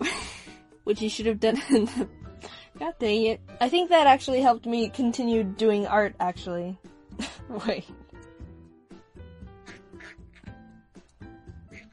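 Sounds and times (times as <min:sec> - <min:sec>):
speech: 0:00.9 - 0:08.0
person imitating duck quacks: 0:09.6 - 0:10.5, 0:11.7 - 0:11.9.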